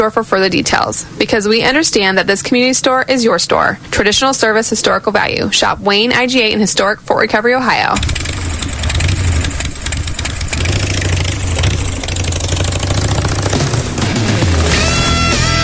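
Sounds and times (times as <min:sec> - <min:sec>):
speech: 0:00.0 - 0:08.3
2016 Harley-Davidson Street Glide motorcycle engine idling and revving: 0:08.0 - 0:15.6.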